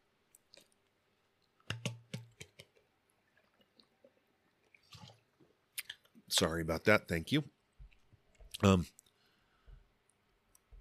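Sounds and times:
person gulping water: 3.3 - 6.1
speech: 6.4 - 7.6, 8.6 - 9.0.

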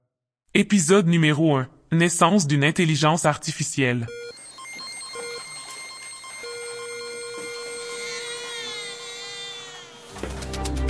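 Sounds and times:
speech: 0.5 - 4.4
electronic beep tone: 4.1 - 10.2
steady hum of electronic machines: 4.1 - 10.8.

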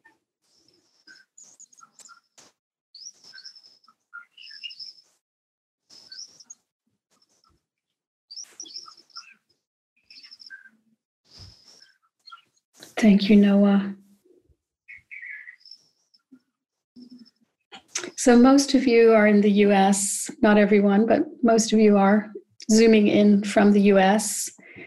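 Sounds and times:
birds twittering and chirping at sunrise: 0.0 - 5.2, 5.9 - 6.6, 8.3 - 13.3, 14.9 - 16.4, 17.0 - 18.4
speech: 13.0 - 14.0, 18.2 - 24.6.

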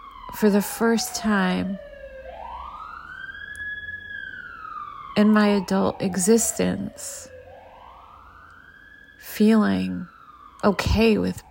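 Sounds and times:
emergency vehicle siren wailing outside: 0.0 - 11.4
speech: 0.3 - 1.9, 5.2 - 7.3, 9.2 - 11.4.

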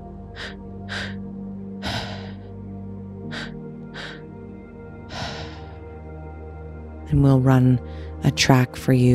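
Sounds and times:
person exhaling in a guided breathing exercise: 0.4 - 1.2, 1.8 - 2.5, 3.3 - 4.2, 5.1 - 5.8
speech: 7.1 - 9.1.

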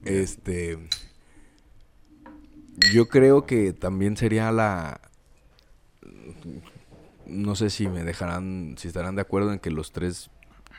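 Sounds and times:
speech: 0.1 - 1.0, 2.8 - 5.1, 6.0 - 6.7, 7.3 - 10.7
glasses clinking together in a toast: 2.8 - 3.2.

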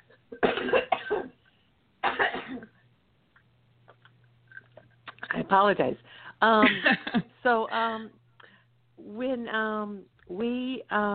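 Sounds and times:
low steady hum: 0.0 - 11.1
person coughing: 0.3 - 1.4, 2.0 - 2.8
speech: 5.5 - 8.2, 9.2 - 11.1.

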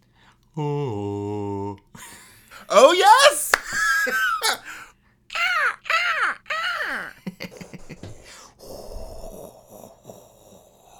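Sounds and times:
speech: 0.6 - 1.1
voices imitating gull cries as homemade seaside sound effects: 2.7 - 7.2
laughter: 2.7 - 8.2.

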